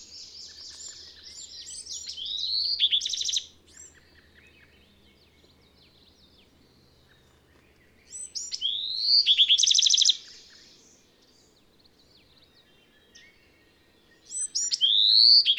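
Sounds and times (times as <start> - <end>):
bird singing whistles and trill: 0.0 - 5.4, 8.1 - 11.0, 12.4 - 15.5.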